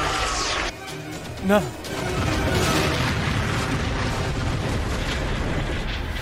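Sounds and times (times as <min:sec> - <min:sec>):
speech: 0:01.4 - 0:02.3
torpedo exploding against a ship's hull: 0:02.0 - 0:06.1.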